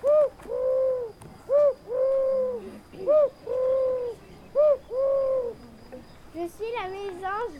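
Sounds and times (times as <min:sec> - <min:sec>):
European turtle dove cooing: 0:00.0 - 0:06.0.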